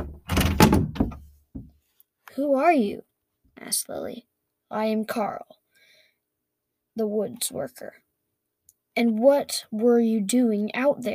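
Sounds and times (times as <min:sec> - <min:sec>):
shop door pushed shut with a thud: 0:00.0 - 0:01.2
speech: 0:02.4 - 0:05.6, 0:07.0 - 0:08.0, 0:09.0 - 0:11.1.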